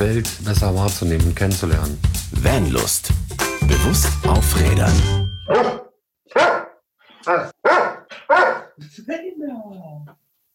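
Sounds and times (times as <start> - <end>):
speech: 0.0 - 5.8, 7.2 - 7.6
dog barking loudly: 5.5 - 8.8.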